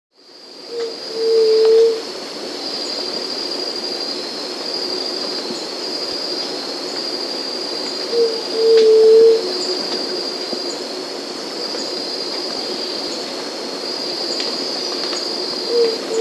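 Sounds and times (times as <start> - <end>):
White-tipped Dove Leptotila verreauxi calling in Peru: 0.7 - 2.1, 8.0 - 10.2, 14.4 - 16.1.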